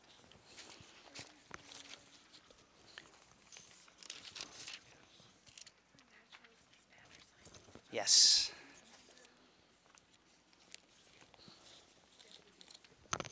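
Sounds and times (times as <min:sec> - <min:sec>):
sheet of paper rustling as it is picked up and handled: 0:00.1 - 0:07.5, 0:08.8 - 0:13.3
speech: 0:07.9 - 0:08.4.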